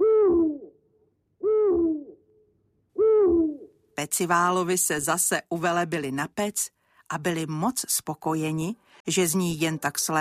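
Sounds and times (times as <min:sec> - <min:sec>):
owl hooting: 0:00.0 - 0:00.7, 0:01.4 - 0:02.2, 0:03.0 - 0:03.7
speech: 0:04.0 - 0:10.2.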